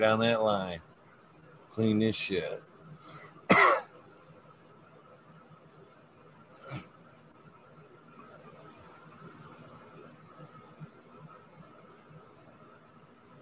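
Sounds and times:
speech: 0.0s - 0.9s, 1.7s - 2.7s
low steady hum: 0.0s - 13.4s
several people coughing: 3.5s - 3.9s.

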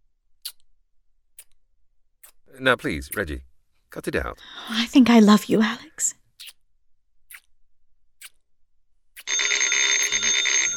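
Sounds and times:
speech: 2.5s - 6.2s
telephone bell ringing: 9.2s - 10.7s.

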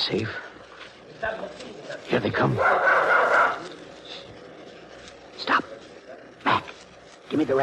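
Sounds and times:
faint noisy background: 0.0s - 7.6s
speech: 0.1s - 0.4s, 1.2s - 3.7s, 7.3s - 7.6s
tracking dog barking after picking up a scent: 2.5s - 3.7s.

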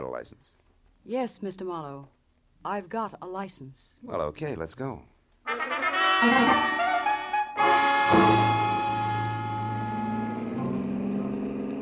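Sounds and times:
speech: 0.2s - 6.8s
Nash car engine revving as the car speeds away: 8.2s - 11.7s.

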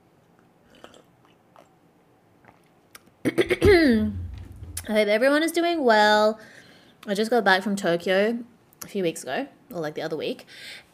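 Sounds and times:
person sipping a hot drink: 0.6s - 1.8s
wet mouth clicks: 0.7s - 1.8s, 2.5s - 3.1s
speech: 4.9s - 10.8s.

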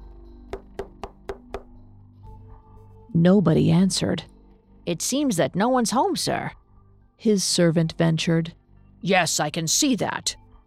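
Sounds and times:
knocking on the wooden door of a stately home: 0.5s - 1.7s
speech: 3.2s - 6.6s, 7.2s - 10.4s.

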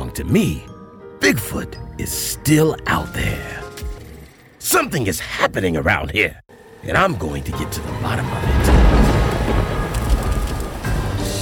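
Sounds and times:
speech: 0.2s - 3.6s, 4.6s - 8.8s
steady rain: 8.8s - 11.3s.

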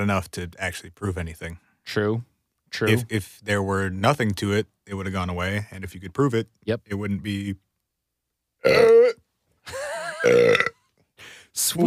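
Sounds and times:
speech: 0.0s - 7.6s, 8.6s - 11.8s
loud throaty burps: 8.6s - 9.2s, 10.2s - 10.8s.

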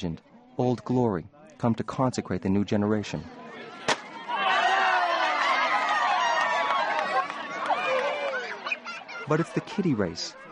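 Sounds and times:
speech: 0.0s - 3.4s, 9.3s - 10.4s
large stadium crowd murmuring and chattering at opening ceremonies: 0.0s - 10.4s.

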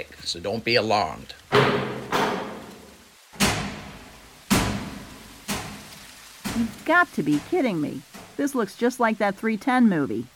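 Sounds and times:
speech: 0.2s - 1.9s, 6.6s - 10.3s
heavy vault door opening with resonant metallic clunks: 1.5s - 5.8s.

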